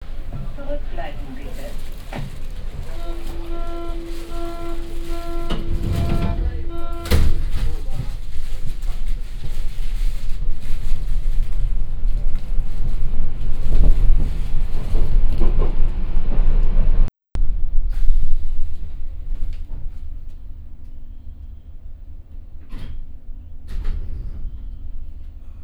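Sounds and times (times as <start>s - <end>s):
Berlin U-Bahn subway train: 0.0s - 25.6s.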